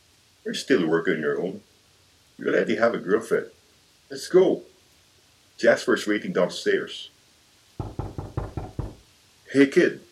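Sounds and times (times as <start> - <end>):
speech: 0.4 - 1.7, 2.4 - 4.7, 5.6 - 7.1, 7.8 - 8.1, 9.5 - 10.0
knocking on a cubicle door: 7.8 - 9.0.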